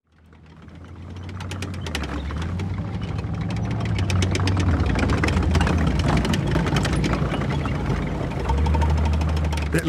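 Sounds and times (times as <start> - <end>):
heavy diesel tractor engine running: 0.1 - 9.8.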